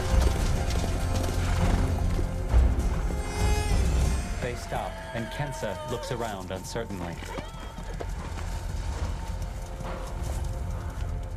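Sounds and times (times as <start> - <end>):
horses galloping with riders along a beach over sand and through shallow water: 0.0 - 11.3
speech: 4.6 - 7.5.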